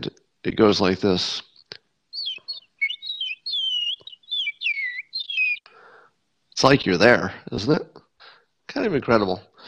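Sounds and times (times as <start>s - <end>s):
speech: 0.0s - 1.5s, 6.6s - 8.0s, 8.8s - 9.5s
voice imitating distant birds heard through a window: 2.2s - 5.8s.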